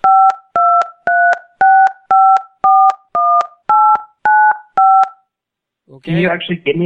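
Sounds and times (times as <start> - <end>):
touch-tone phone keypad beeps entering an account number: 0.0 - 5.2
speech: 6.0 - 6.8.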